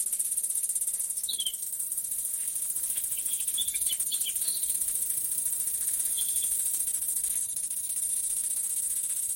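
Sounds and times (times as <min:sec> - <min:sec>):
summer ambience: 0:01.4 - 0:09.3.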